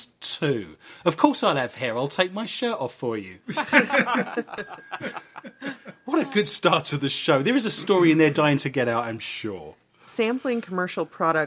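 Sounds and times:
speech: 0:00.4 - 0:11.4
people chuckling and laughing: 0:03.5 - 0:06.6
small hand bell ding as a penalty buzzer: 0:04.6 - 0:06.2.

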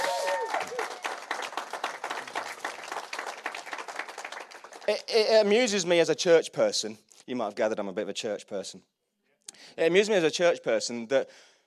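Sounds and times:
person whooping or cheering in a crowd: 0:00.0 - 0:01.0
crowd applauding: 0:00.0 - 0:05.1
speech: 0:04.9 - 0:08.9, 0:09.7 - 0:11.5.

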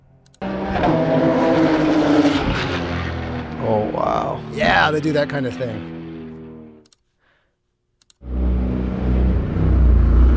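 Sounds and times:
street Porsche engine growl pitched down: 0:00.4 - 0:06.8, 0:08.2 - 0:10.3
speech: 0:04.0 - 0:06.0.

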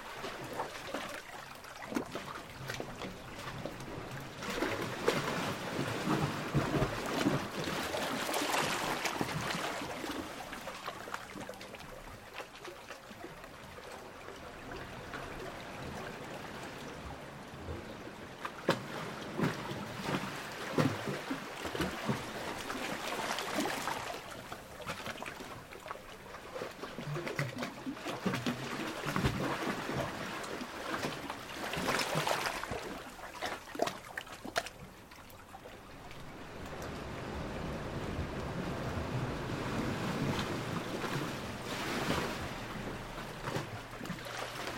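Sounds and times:
seawater surging into a long rocky chamber on the beach: 0:00.0 - 0:44.7.

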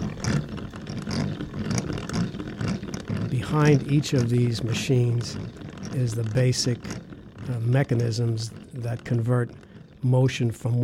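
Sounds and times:
car transmission gears whirring in reverse: 0:00.0 - 0:10.8
speech: 0:03.4 - 0:10.8.

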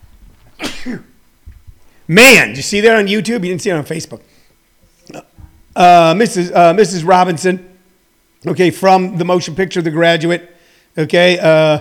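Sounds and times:
loud sneeze: 0:00.6 - 0:01.2
speech: 0:00.8 - 0:01.1, 0:02.1 - 0:04.3, 0:05.1 - 0:07.7, 0:08.4 - 0:11.7.

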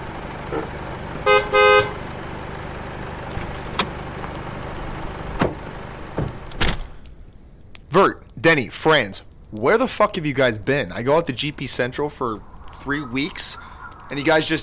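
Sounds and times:
car engine rumble: 0:00.0 - 0:14.6
car horn honking: 0:01.2 - 0:02.1
speech: 0:08.0 - 0:14.6.

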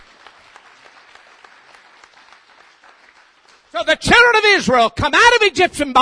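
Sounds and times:
audience applause: 0:00.0 - 0:04.3
speech: 0:03.7 - 0:06.0.

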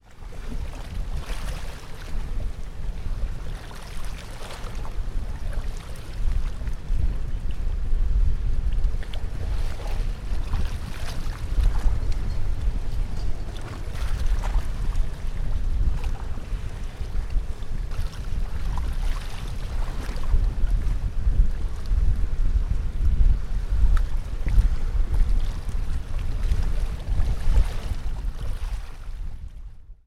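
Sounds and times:
wind gusts: 0:00.0 - 0:29.9
deep steady rumble at Bocas de Ceniza on the Magdalena River: 0:06.2 - 0:28.4.

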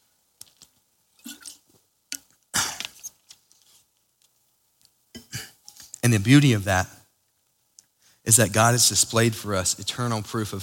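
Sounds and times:
person drinking water with sips and gulps: 0:01.2 - 0:03.0
speech: 0:06.1 - 0:07.0, 0:08.3 - 0:10.6.

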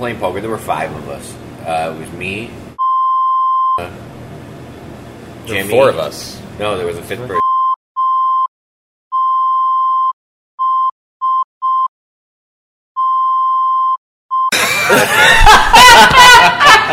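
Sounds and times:
speech: 0:00.0 - 0:02.6, 0:03.8 - 0:04.2, 0:05.5 - 0:07.4
censor bleeps: 0:02.8 - 0:03.8, 0:07.4 - 0:08.5, 0:09.1 - 0:11.9, 0:13.0 - 0:14.5
outburst of laughter: 0:14.5 - 0:16.9.

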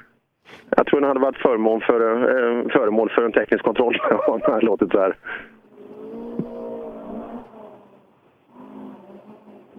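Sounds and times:
speech: 0:00.7 - 0:05.5
laughter: 0:03.8 - 0:04.9
rally car engine roaring and revving on a forest rally stage: 0:05.7 - 0:09.7.

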